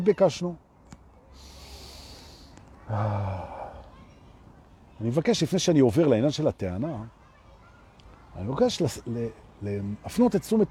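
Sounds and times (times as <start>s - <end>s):
speech: 0.0s - 0.6s, 2.9s - 3.6s, 5.0s - 7.2s, 8.4s - 10.6s
person breathing out during a breathing exercise: 1.4s - 3.9s.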